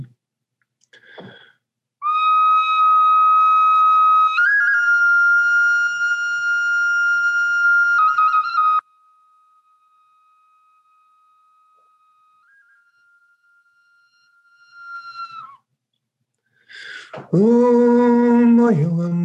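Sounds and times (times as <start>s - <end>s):
bone whistle blowing a breathy tone: 2.0s - 15.7s
speech: 17.3s - 18.1s, 18.7s - 19.1s.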